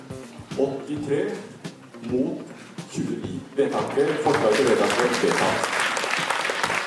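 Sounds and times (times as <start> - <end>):
speech: 0.6 - 5.8
large crowd applauding at a church assembly after a vote: 3.9 - 6.8.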